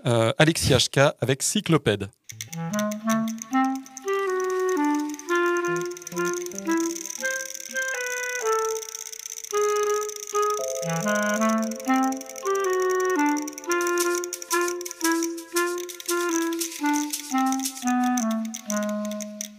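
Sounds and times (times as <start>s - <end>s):
speech: 0.0s - 2.6s
crisp ticking clicking percussion: 2.3s - 19.5s
instrumental song intro with melodic line over warm accompaniment: 3.1s - 8.2s, 10.4s - 19.0s.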